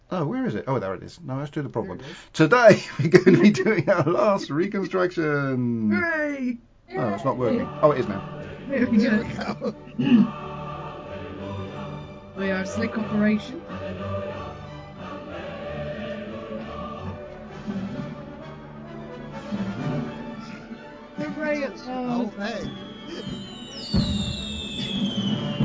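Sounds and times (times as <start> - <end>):
speech: 0.1 - 10.4, 12.4 - 14.1, 21.5 - 24.4
laughter: 2.7 - 4.7, 7.4 - 10.5
whistling fireworks streaks rising and falling: 20.1 - 25.6
fireworks display crackling and popping: 21.2 - 25.6.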